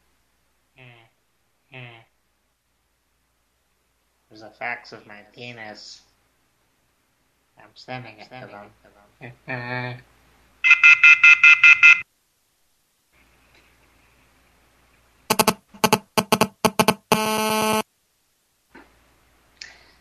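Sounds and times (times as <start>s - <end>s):
speech: 4.4s - 6.1s, 7.6s - 10.1s
cell phone signal interference sharp ticking bursts: 10.6s - 12.0s, 15.3s - 17.8s
cell phone signal interference pulsed electronic buzzes: 15.3s - 17.8s.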